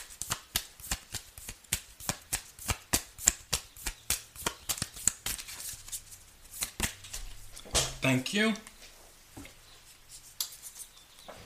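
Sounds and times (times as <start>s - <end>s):
oracle cards being shuffled and dealt: 0.0s - 7.4s
speech: 8.0s - 8.7s.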